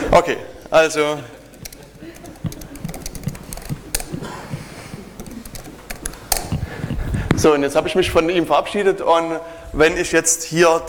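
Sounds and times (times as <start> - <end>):
speech: 0.1 - 1.4, 7.4 - 10.8
typing a chat message on a computer keyboard: 1.4 - 6.8.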